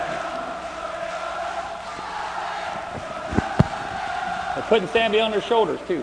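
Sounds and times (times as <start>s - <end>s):
large stadium crowd roaring and cheering: 0.0s - 6.0s
sharp thumps: 2.8s - 4.4s
speech: 4.7s - 6.0s.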